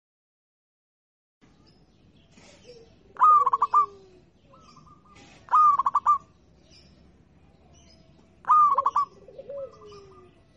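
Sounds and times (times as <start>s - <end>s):
zebra dove singing rolling coos, local type: 3.1s - 6.3s, 8.4s - 10.5s.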